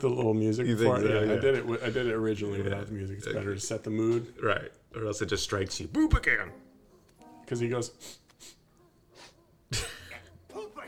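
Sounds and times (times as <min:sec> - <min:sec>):
speech: 0:00.0 - 0:06.6, 0:07.5 - 0:08.6, 0:09.7 - 0:09.9
person sniffing: 0:08.0 - 0:10.1.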